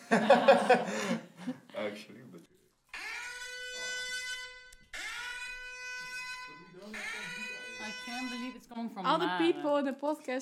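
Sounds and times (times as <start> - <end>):
laughter: 0.0 - 1.9
speech: 0.1 - 2.2, 8.7 - 10.4
loud buzzing electronic alarm: 2.9 - 8.8.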